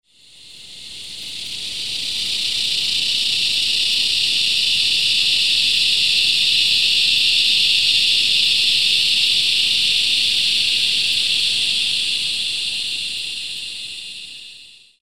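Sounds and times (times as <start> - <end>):
cicadas: 0.0 - 15.0.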